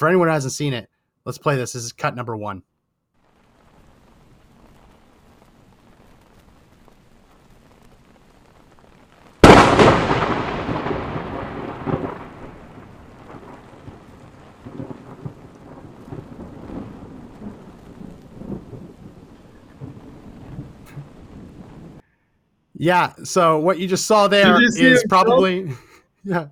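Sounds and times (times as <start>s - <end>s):
speech: 0.0s - 2.7s, 22.8s - 26.5s
steady rain in a lightning storm: 3.2s - 22.0s, 22.8s - 26.5s
thunder crack from a close lightning strike: 9.4s - 22.0s
laughter: 23.9s - 26.4s.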